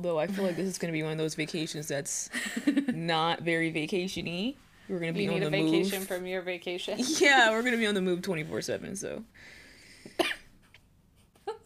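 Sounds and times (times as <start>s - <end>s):
speech: 0.0s - 9.6s
quiet low noise: 0.0s - 11.6s
person coughing: 10.1s - 10.5s.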